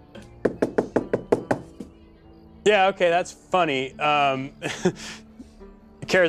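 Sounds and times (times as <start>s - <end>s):
sharp hollow knocks on a door or table: 0.5s - 1.9s
speech: 2.6s - 5.2s.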